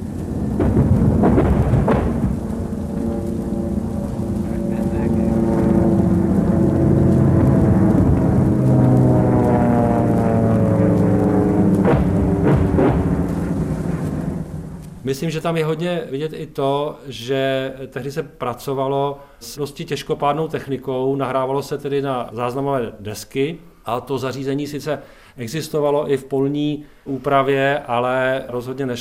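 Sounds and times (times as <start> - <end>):
heavy German anti-aircraft guns firing during an air raid: 0.0 - 15.2
speech: 15.1 - 28.9.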